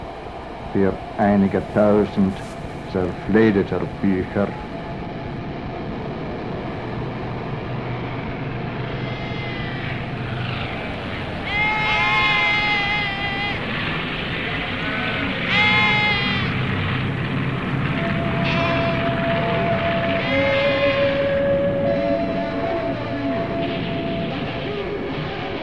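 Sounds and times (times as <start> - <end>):
steady ambient noise: 0.0 - 25.6
sustained tone: 0.0 - 25.6
speech: 0.7 - 4.7
several goats bleating: 9.0 - 17.1, 18.0 - 21.2.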